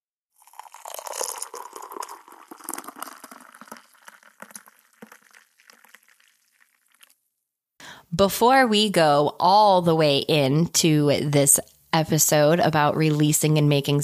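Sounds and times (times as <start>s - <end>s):
coffee pouring into a cup: 0.4s - 7.2s
speech: 8.2s - 14.0s.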